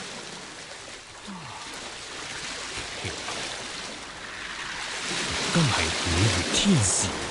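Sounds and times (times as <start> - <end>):
rushing river water: 0.0 - 7.3
low rumbling swells: 3.1 - 7.3
speech: 5.6 - 7.3.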